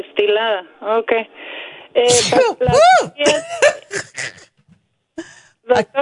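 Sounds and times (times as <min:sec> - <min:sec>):
speech: 0:00.2 - 0:04.4, 0:05.7 - 0:06.0
person sneezing from construction dust: 0:02.0 - 0:04.4.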